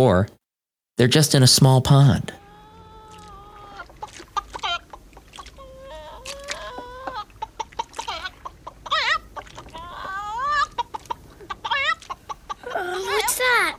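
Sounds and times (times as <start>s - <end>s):
speech: 0.0s - 0.4s, 1.0s - 2.4s
chicken clucking: 2.4s - 12.7s.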